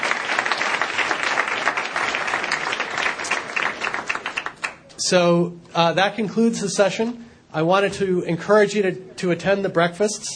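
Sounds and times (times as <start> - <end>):
large audience applause: 0.0 - 4.9
speech: 5.1 - 10.3.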